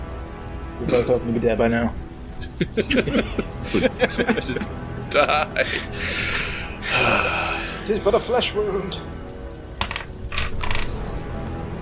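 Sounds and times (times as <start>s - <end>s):
speech: 0.8s - 7.3s, 7.9s - 9.1s
laughter: 2.4s - 8.0s
dice rolling on a hard tabletop: 9.8s - 11.0s.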